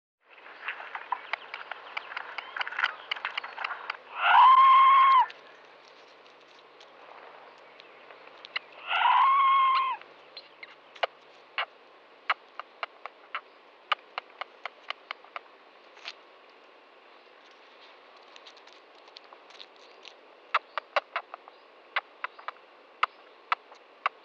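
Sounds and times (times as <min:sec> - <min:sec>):
red squirrel chucking calls: 0:00.8 - 0:05.6, 0:08.4 - 0:15.5, 0:19.8 - 0:24.2
red squirrel smacking: 0:00.8 - 0:16.2, 0:17.6 - 0:24.2.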